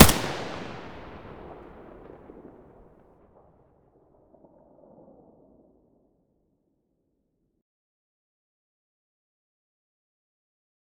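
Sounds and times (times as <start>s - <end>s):
AK-74U muzzle gunshot: 0.0s - 2.4s.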